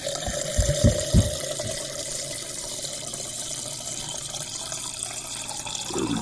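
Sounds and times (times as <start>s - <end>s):
soft low thumps: 0.0s - 1.8s
steady hum: 0.0s - 4.9s
rum being poured into a blender: 0.0s - 6.1s.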